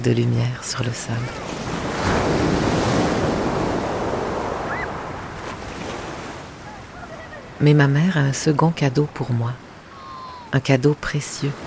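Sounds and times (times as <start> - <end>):
speech: 0.0 - 2.8, 7.6 - 9.6, 10.5 - 11.6
sea waves and surf: 0.0 - 11.6.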